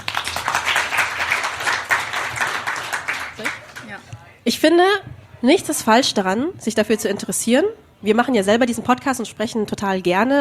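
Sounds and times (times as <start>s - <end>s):
audience applause: 0.0s - 4.0s
speech: 3.4s - 3.6s, 4.4s - 10.3s.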